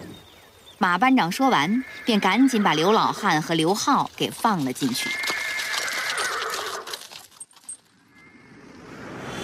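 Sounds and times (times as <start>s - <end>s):
speech: 0.8s - 5.3s
horse pulling a cart whinnying: 1.5s - 3.5s, 4.8s - 7.3s
clip-clopping hooves of a horse-drawn cart: 2.1s - 8.0s.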